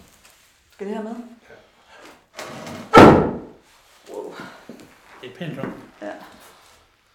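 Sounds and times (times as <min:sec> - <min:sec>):
speech: 0:00.8 - 0:01.6, 0:05.2 - 0:06.4
small light table scraping on the floor: 0:02.4 - 0:03.4
heavy thump: 0:02.9 - 0:03.6.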